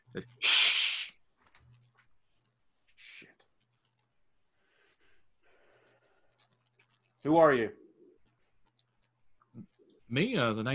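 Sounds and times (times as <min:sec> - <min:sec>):
speech: 0:00.2 - 0:00.6, 0:07.2 - 0:07.8, 0:10.1 - 0:10.7
cat hissing: 0:00.4 - 0:01.1.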